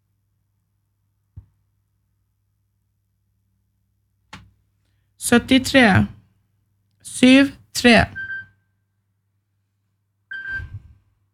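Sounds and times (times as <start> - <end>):
speech: 5.3 - 6.2, 7.2 - 8.2
telephone ringing with a steady electronic tone: 10.3 - 10.7.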